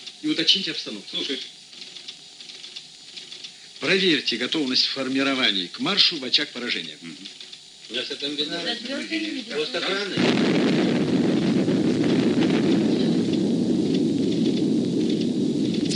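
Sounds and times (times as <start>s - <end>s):
speech: 0.2s - 1.6s, 3.8s - 10.9s
distant explosion roar during a civil defense exercise: 10.1s - 15.9s.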